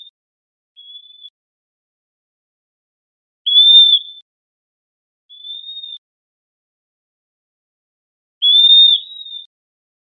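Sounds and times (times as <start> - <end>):
Western wood-pewee giving a clear high whistled note: 0.8 - 1.3, 3.5 - 4.2, 5.3 - 6.0, 8.4 - 9.5.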